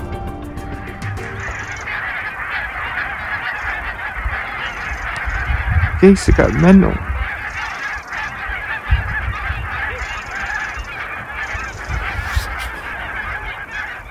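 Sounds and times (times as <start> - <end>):
large flock of geese honking descending on Suffolk coastal marshes: 0.1 - 14.0
speech: 6.0 - 7.1.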